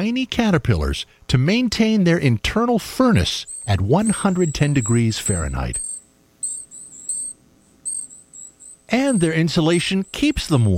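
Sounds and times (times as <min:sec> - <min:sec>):
speech: 0:00.0 - 0:05.9, 0:08.9 - 0:10.7
Golden-crowned kinglet giving high thin silvery call notes in winter forest: 0:03.4 - 0:10.6.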